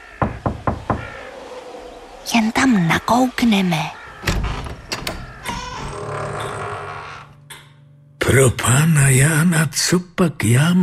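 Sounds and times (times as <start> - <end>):
knocking on a door: 0.2 - 1.2
speech: 2.3 - 4.0, 8.3 - 10.8.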